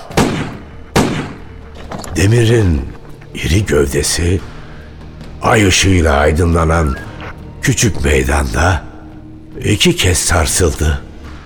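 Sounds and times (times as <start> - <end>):
gunshots fired at a man in a small moonlit square at night: 0.0 - 1.5
speech: 2.2 - 4.5, 5.4 - 8.9, 9.6 - 11.0.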